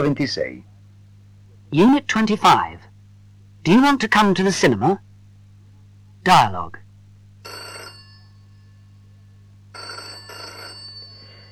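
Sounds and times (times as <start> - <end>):
speech: 0.0 - 0.7, 1.7 - 2.9, 3.6 - 5.1, 6.2 - 6.8
faint steady low hum: 0.0 - 11.5
telephone bell ringing: 7.4 - 11.5.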